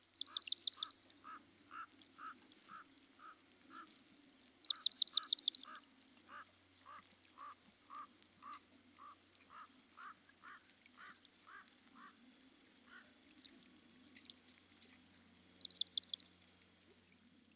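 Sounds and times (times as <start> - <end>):
Common Sandpiper Actitis hypoleucos calling: 0.0 - 3.9, 4.6 - 13.1, 15.6 - 16.7.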